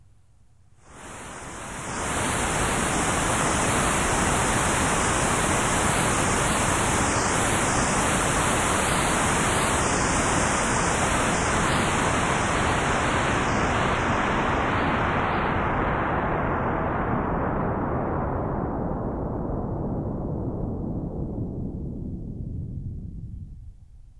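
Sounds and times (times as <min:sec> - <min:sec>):
white noise through sweeping low-pass filter: 0:00.0 - 0:24.1.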